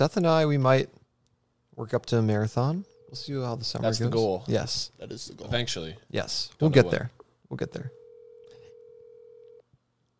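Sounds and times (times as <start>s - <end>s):
speech: 0.0s - 1.0s, 1.8s - 8.0s
phone call ringing tone beep: 7.8s - 9.6s.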